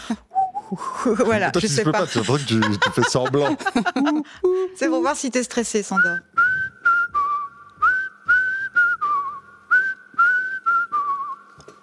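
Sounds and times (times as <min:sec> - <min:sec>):
speech: 0:00.1 - 0:06.3
person whistling a short melody with slight tremolo: 0:00.3 - 0:01.0, 0:06.0 - 0:11.8
laughter: 0:00.9 - 0:04.4.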